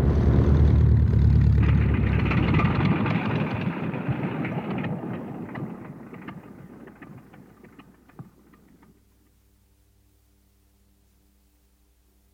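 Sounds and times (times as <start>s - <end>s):
aircraft landing on a runway: 0.0s - 9.0s.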